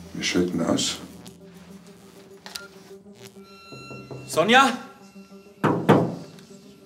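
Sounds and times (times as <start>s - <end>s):
speech: 0.2s - 1.1s, 4.4s - 4.9s
heavy thuds knocking on a door: 5.6s - 6.3s.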